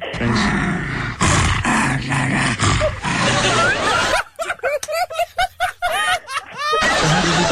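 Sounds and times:
noisy talk: 0.0 - 4.2, 5.8 - 7.5
dog growling and grumbling in its throat: 0.2 - 4.1
laughter: 2.8 - 7.5.

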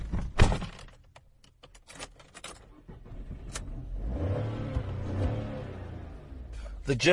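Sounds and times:
car engine cranking, starting and idling: 1.6 - 7.1
speech: 6.9 - 7.1.

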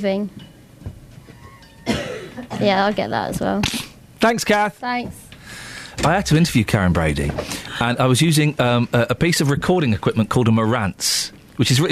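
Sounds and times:
speech: 0.0 - 0.4, 2.4 - 11.9
person coughing with a rasp: 1.8 - 2.8.

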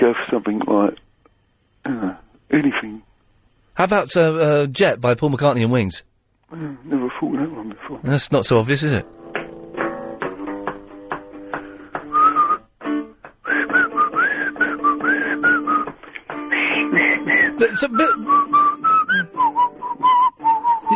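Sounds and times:
speech: 0.0 - 1.1, 1.8 - 3.1, 3.8 - 9.2, 17.7 - 18.3
person whistling a tune: 12.0 - 12.7, 13.4 - 20.9.

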